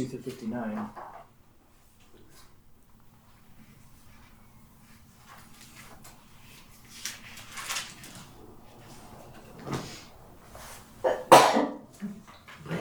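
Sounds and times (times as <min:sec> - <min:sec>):
speech: 0:00.0 - 0:01.2
faint shuffling: 0:00.0 - 0:12.7
person sneezing: 0:11.1 - 0:11.8.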